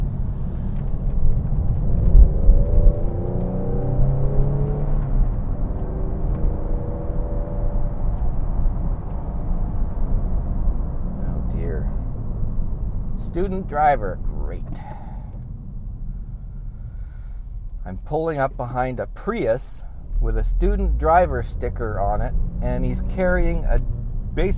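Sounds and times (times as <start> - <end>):
car engine accelerating to pass a small truck: 0.0 - 24.5
loud low road rumble heard from inside a vehicle: 0.0 - 24.5
speech: 13.4 - 15.0, 17.8 - 24.5.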